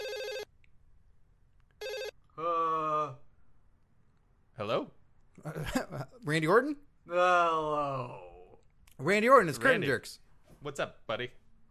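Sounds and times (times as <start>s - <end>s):
telephone ringing on outgoing call: 0.0s - 0.5s, 1.8s - 2.2s
longer steady telephone tone: 0.0s - 0.6s, 1.8s - 2.3s
speech: 5.5s - 8.2s, 9.0s - 11.4s.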